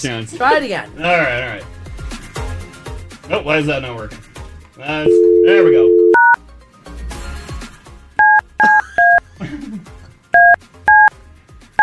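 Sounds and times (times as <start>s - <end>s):
speech: 0.0s - 1.7s, 3.3s - 6.0s
touch-tone keypad buttons pressed hard to dial a phone: 5.1s - 6.4s, 8.2s - 9.2s, 10.4s - 11.1s.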